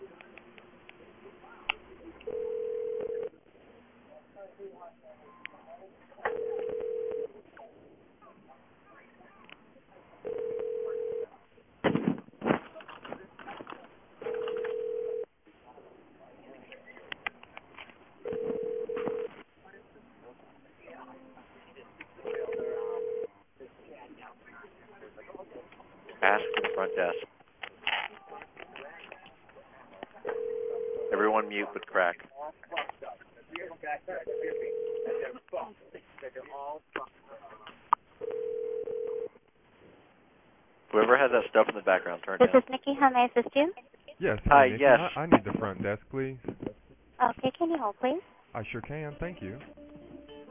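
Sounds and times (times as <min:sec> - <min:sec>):
voices and chatter: 0:00.0 - 0:40.0, 0:40.9 - 0:50.4
telephone line ringback tone through a narrow phone connection: 0:02.3 - 0:03.3, 0:06.3 - 0:07.3, 0:10.2 - 0:11.3, 0:14.2 - 0:15.3, 0:18.2 - 0:19.3, 0:22.2 - 0:23.3, 0:30.3 - 0:31.3, 0:34.3 - 0:35.3, 0:38.2 - 0:39.3
speech: 0:31.6 - 0:32.9, 0:40.9 - 0:46.5, 0:47.2 - 0:49.8.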